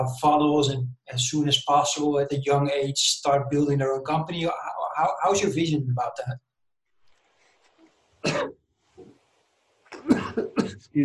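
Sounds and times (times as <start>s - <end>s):
speech: 0.0s - 6.5s, 8.2s - 8.6s, 10.0s - 11.0s
person coughing: 8.2s - 8.5s, 9.9s - 10.9s
throat clearing: 8.2s - 8.5s, 9.9s - 11.0s.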